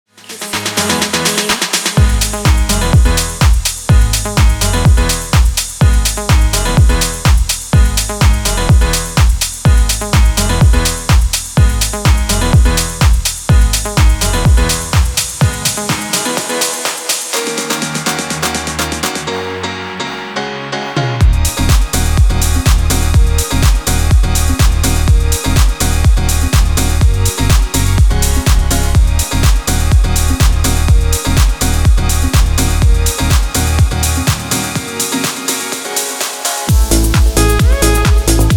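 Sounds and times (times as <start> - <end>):
live house music: 0.2 - 19.6, 21.2 - 38.5.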